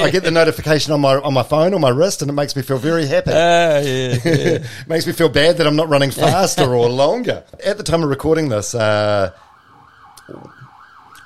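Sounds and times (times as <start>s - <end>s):
laughter: 0.0s - 0.8s, 2.6s - 5.1s, 5.9s - 7.2s
speech: 0.0s - 9.4s, 10.3s - 10.6s
ambulance siren wailing: 9.0s - 11.2s.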